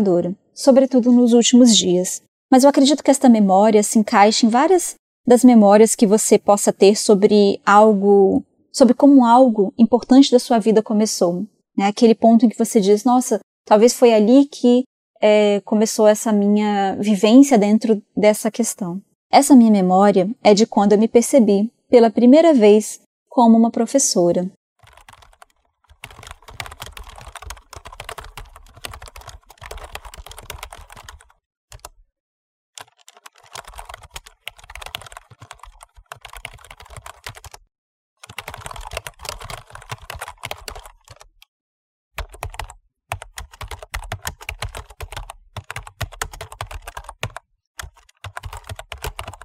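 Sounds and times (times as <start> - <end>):
speech: 0.0 - 24.6
typing on a computer keyboard: 24.8 - 32.0, 32.8 - 37.6, 38.2 - 41.5, 42.2 - 49.4.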